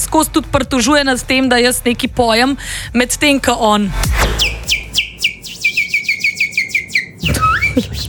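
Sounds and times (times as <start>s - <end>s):
speech: 0.0s - 4.5s
man whistling in imitation of a warbling bird: 4.4s - 8.0s.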